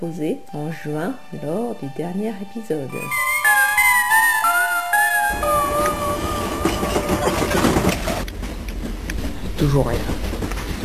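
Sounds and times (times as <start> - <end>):
speech: 0.0 - 3.3, 9.6 - 10.2
train running along the track heard from inside the last carriage: 0.0 - 10.8
high whistling tones: 2.9 - 8.0
broadband rattling noise: 5.0 - 10.8.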